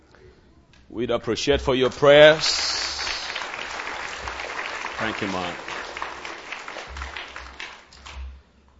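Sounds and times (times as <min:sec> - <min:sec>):
speech: 0:00.9 - 0:02.8, 0:05.0 - 0:05.7
audience clapping: 0:01.8 - 0:08.4.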